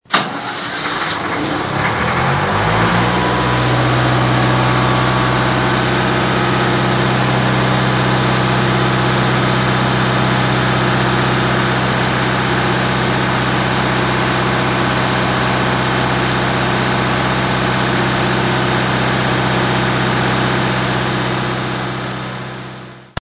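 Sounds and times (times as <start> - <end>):
tuned generator running: 0.0 - 23.2.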